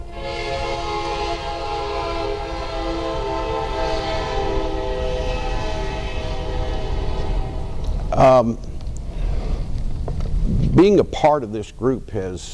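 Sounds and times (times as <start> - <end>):
train horn long loud blast: 0.0 - 8.7
train rumbling past: 0.0 - 12.5
speech: 8.2 - 8.7, 10.8 - 12.5.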